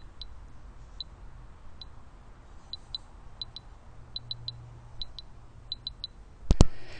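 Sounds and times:
light high electronic ticks from a compass navigation tone: 0.0s - 0.4s, 2.7s - 6.6s
quiet hum: 0.0s - 6.9s.

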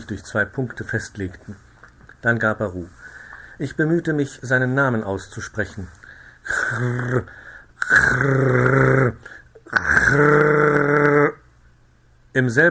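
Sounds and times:
speech: 0.0s - 9.2s, 10.1s - 10.6s, 12.4s - 12.6s
voice imitating loud rasping snoring: 6.5s - 11.4s.

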